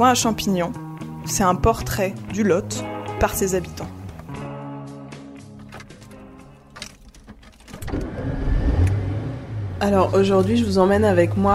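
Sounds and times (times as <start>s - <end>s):
speech: 0.0s - 4.0s, 9.8s - 11.5s
clicks and knocks: 5.6s - 8.1s
car engine humming: 5.6s - 11.5s
road rumble: 5.6s - 11.5s
car engine revving and pulling away: 7.7s - 11.5s.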